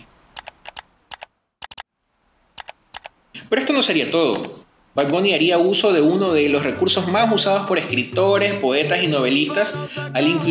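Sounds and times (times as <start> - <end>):
sharp computer mouse clicks: 0.4 - 1.8, 2.6 - 3.1
speech: 3.5 - 10.4.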